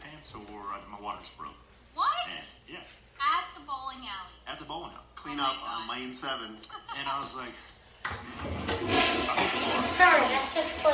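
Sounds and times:
speech: 0.2s - 10.9s
toilet flushing: 8.1s - 10.9s.

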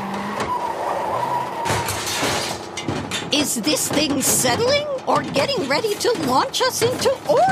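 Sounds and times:
heavy crawler vehicle grinding as it steers hard in a tunnel: 0.0s - 7.4s
sharp clanking hits: 1.6s - 7.4s
speech: 3.3s - 7.4s.

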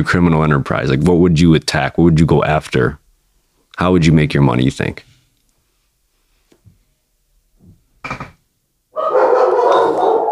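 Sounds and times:
speech: 0.0s - 3.0s, 3.8s - 5.1s, 8.1s - 8.3s
dogs barking and yapping excitedly: 8.9s - 10.3s.

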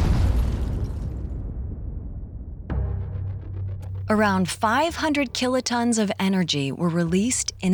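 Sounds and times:
deep rumbling explosion boom from a meteor exploding above Chelyabinsk, Russia: 0.0s - 3.8s
speech: 4.1s - 7.7s.

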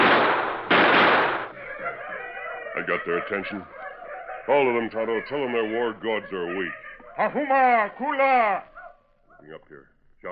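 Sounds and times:
gunshots fired at the ground: 0.0s - 1.6s
laughter: 1.5s - 8.7s
speech: 2.8s - 3.8s, 4.5s - 8.7s, 9.4s - 10.3s.

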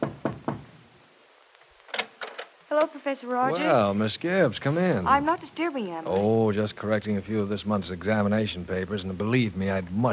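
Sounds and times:
firm knocks on a wooden office door: 0.0s - 0.7s
speech: 2.7s - 10.1s.

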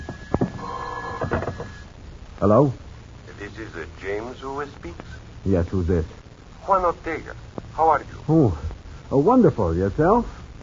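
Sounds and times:
clattering knocks: 0.0s - 1.8s
telephone ringing: 0.0s - 1.9s
speech: 2.4s - 2.8s, 3.7s - 10.4s.

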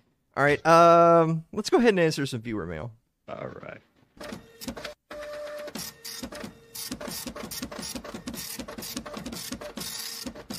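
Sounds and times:
speech: 0.4s - 4.9s
printer mechanism whirring and clicking while printing: 4.2s - 10.5s.

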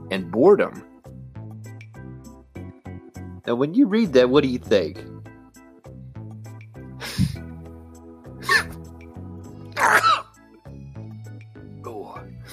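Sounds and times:
speech: 0.1s - 0.9s, 3.5s - 5.1s
person faking exaggerated sneezes: 8.4s - 8.8s, 9.8s - 10.3s.

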